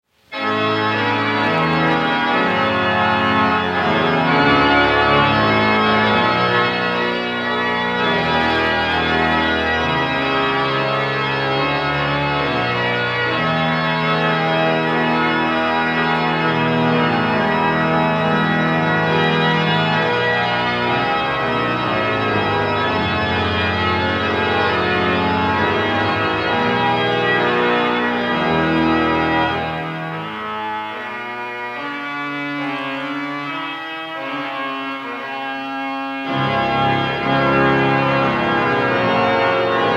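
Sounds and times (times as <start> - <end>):
organ music: 0.3 - 39.9.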